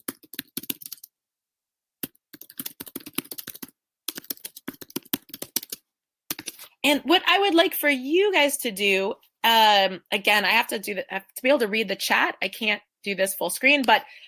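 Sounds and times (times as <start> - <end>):
typing on a computer keyboard: 0.0 - 1.1, 2.0 - 6.6
speech: 6.8 - 14.2.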